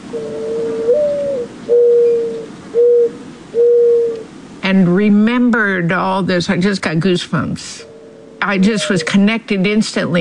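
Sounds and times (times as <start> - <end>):
mourning dove cooing song: 0.0 - 4.3, 7.8 - 9.3
speech: 0.1 - 0.6, 4.8 - 10.1.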